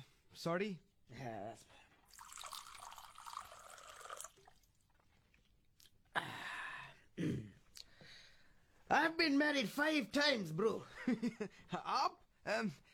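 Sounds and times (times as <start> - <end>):
speech: 0.4 - 1.8, 8.9 - 12.9
water pouring from a jug into a glass: 2.0 - 5.1
liquid splashing and gulping: 2.0 - 6.1.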